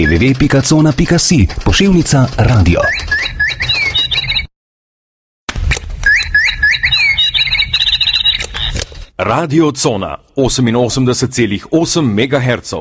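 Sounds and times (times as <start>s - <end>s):
speech: 0.0s - 3.6s, 9.2s - 12.7s
busy overlapping bird chirps and whistles: 2.8s - 4.5s, 6.0s - 8.8s.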